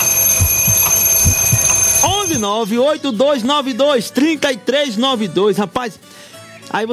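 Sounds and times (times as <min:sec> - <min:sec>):
soft thumps: 0:00.0 - 0:02.5
steady hum: 0:00.0 - 0:02.5
alarm clock ringing: 0:00.0 - 0:02.6
speech: 0:02.4 - 0:06.1, 0:06.7 - 0:06.9.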